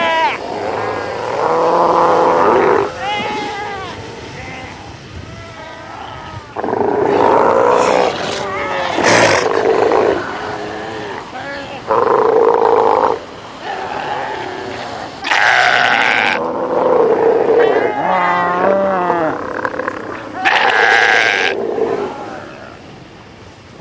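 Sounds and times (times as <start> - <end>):
South American sea lions calling in chorus: 0.0 - 23.0.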